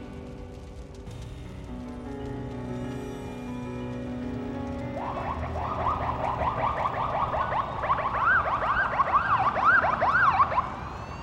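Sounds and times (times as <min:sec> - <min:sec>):
steady rumble of traffic: 0:00.0 - 0:11.2
fire engine sirens wailing: 0:02.6 - 0:11.2.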